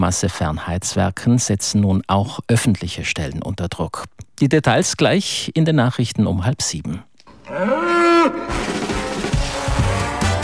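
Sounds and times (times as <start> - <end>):
speech: 0.0 - 8.4
bull bellowing: 7.4 - 10.4.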